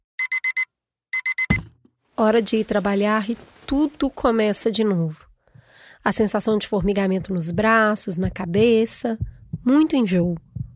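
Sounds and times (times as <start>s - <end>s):
electronic alarm clock beeping: 0.2s - 1.6s
speech: 2.2s - 5.3s, 6.0s - 10.4s.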